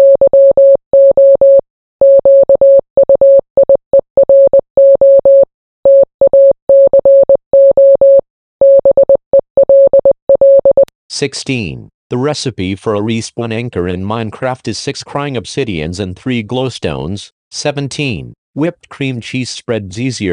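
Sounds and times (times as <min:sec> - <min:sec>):
Morse code beeps in a single pure tone: 0:00.0 - 0:10.9
speech: 0:11.2 - 0:20.3.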